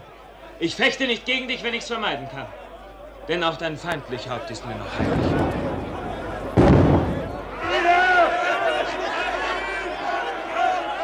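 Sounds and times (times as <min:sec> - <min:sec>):
clamor of raised voices: 0:00.0 - 0:11.0
laughter: 0:00.0 - 0:11.0
speech: 0:00.6 - 0:02.6, 0:03.2 - 0:05.6
gunshot: 0:04.9 - 0:07.9.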